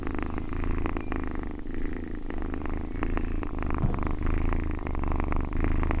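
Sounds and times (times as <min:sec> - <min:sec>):
domestic cat purring: 0:00.0 - 0:05.9.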